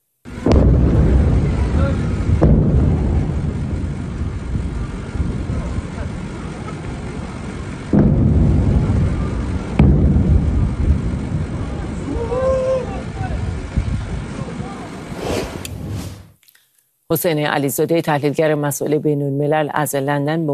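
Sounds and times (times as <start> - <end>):
loud explosions booming in Sirik, Iran at dawn: 0.3 - 12.0
deep rolling rumble trailing from explosion blasts: 0.3 - 16.4
speech: 17.1 - 20.5.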